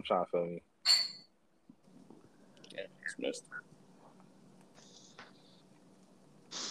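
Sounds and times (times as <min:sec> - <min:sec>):
speech: 0:00.0 - 0:01.1, 0:02.8 - 0:03.7
glass clink from a bottle: 0:00.9 - 0:01.3.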